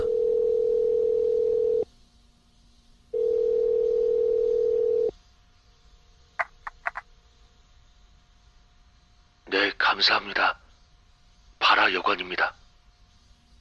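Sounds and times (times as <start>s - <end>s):
phone ringback tone during a call to an inn: 0.0s - 1.8s, 3.2s - 5.1s
speech: 10.0s - 10.6s, 12.0s - 12.6s.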